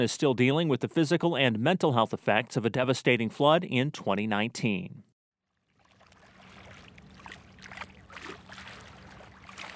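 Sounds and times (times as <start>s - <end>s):
speech: 0.0s - 5.0s
gentle river water lapping against a riverbank: 5.4s - 9.7s.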